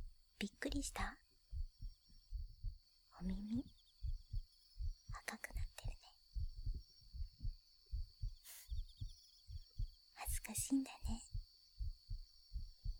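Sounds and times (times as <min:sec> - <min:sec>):
heartbeat heard against a woman's chest: 0:00.0 - 0:12.9
speech: 0:00.4 - 0:01.2, 0:03.2 - 0:03.8, 0:10.5 - 0:11.2
woman whispering: 0:00.4 - 0:01.2, 0:03.2 - 0:03.7, 0:05.1 - 0:06.2, 0:10.2 - 0:11.4.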